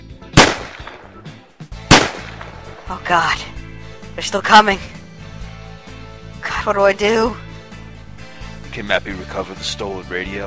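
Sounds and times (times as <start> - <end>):
gunshot sound effects from a retro arcade chase game: 0.4 - 1.3, 1.9 - 2.8
speech: 2.9 - 3.5, 4.2 - 5.0, 6.6 - 7.4, 8.7 - 10.4.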